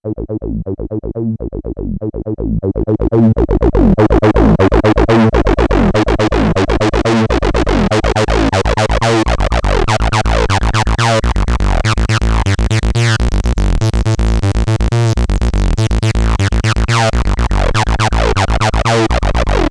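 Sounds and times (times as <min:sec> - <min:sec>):
acid bassline: 0:00.0 - 0:19.6.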